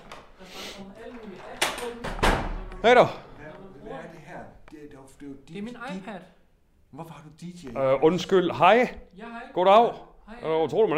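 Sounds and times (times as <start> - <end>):
basement door opening with a sharp clunk and rattling thud: 1.5 - 2.9
speech: 2.8 - 3.2, 5.4 - 10.9.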